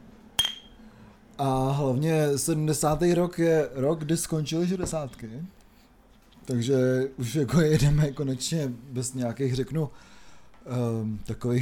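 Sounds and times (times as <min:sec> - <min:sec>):
beer glasses clinking in a toast: 0:00.4 - 0:00.8
speech: 0:01.4 - 0:05.6, 0:06.4 - 0:11.6.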